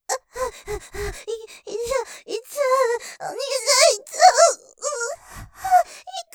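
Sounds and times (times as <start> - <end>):
person panting with heavy breathing: 0.2 - 3.3, 5.1 - 6.1.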